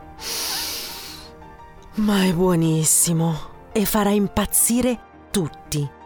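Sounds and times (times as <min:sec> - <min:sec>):
aerosol deodorant sprayed in a bedroom: 0:00.2 - 0:01.3
speech: 0:02.0 - 0:06.0.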